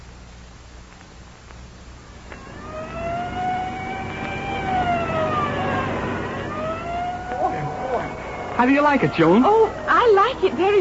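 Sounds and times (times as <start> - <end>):
police car engine and road rumble: 0.8 - 10.7
police car siren wailing: 2.2 - 10.7
speech: 8.6 - 10.7.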